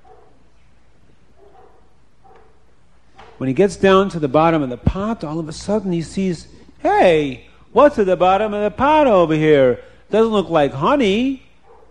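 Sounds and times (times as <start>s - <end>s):
dogs barking: 0.0s - 0.5s, 1.4s - 3.4s, 11.6s - 11.8s
steady hiss: 0.0s - 11.8s
speech: 3.4s - 11.4s.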